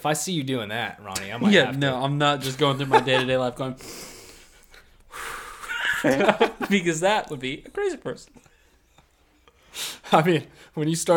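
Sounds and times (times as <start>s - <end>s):
speech: 0.0s - 4.2s, 6.0s - 8.5s, 9.8s - 11.1s
laughter: 1.2s - 3.8s, 5.5s - 9.5s
person imitating exaggerated in-through-the-nose out-through-the-mouth breathing: 3.8s - 5.9s.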